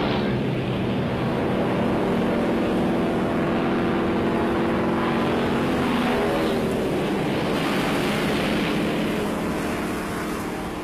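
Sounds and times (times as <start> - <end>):
Soviet-supplied jet fighter taking off and flying overhead: 0.0 - 10.8.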